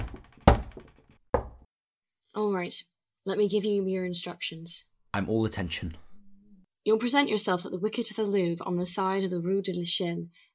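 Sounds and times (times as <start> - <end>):
knocks on a wooden door: 0.0 - 1.7
speech: 2.4 - 6.0, 6.8 - 10.5.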